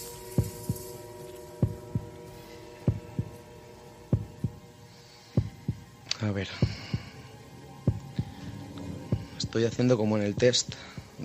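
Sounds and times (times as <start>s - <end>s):
low constant hum: 0.0s - 11.2s
slow heartbeat: 1.6s - 2.1s, 2.9s - 3.4s, 4.1s - 4.6s, 5.4s - 5.9s, 6.6s - 7.2s, 7.8s - 8.4s, 9.1s - 9.6s, 10.4s - 11.2s
speech: 6.2s - 6.8s, 9.5s - 11.2s.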